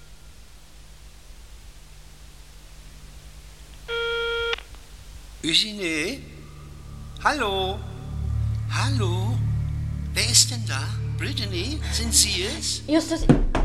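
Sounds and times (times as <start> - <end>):
mobile phone call tones: 3.9 - 4.6
speech: 5.5 - 6.3, 7.2 - 7.9, 8.7 - 9.4, 10.2 - 13.5.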